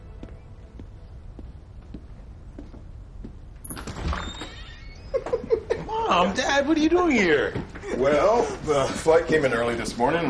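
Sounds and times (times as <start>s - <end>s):
evenly spaced footsteps approaching: 0.0s - 4.0s
door clattering open with a rattle of the latch: 3.6s - 5.5s
brief scraping door creak: 3.6s - 5.9s
speech: 6.1s - 10.2s.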